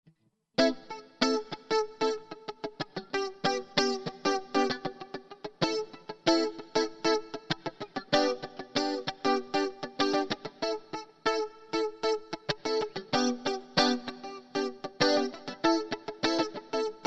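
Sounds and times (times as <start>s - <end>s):
muted samba rhythm on guitar: 0.6s - 17.0s.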